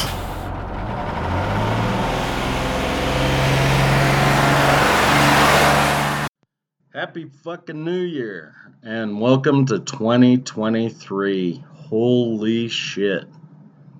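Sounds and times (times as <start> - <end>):
bus engine revving as the bus rolls forward: 0.0 - 6.3
speech: 7.1 - 13.4.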